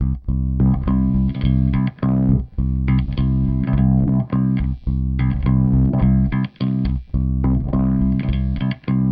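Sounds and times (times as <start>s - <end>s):
effected bass with delay: 0.0s - 9.0s.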